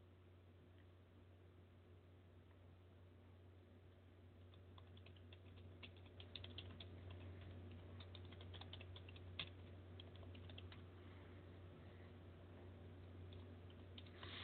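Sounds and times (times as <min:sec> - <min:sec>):
low electrical hum: 0:00.0 - 0:14.4
typing on a computer keyboard: 0:04.4 - 0:10.9.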